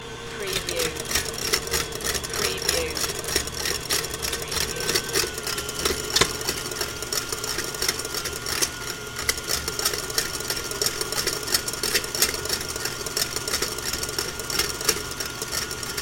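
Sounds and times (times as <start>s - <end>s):
blender: 0.0s - 16.0s.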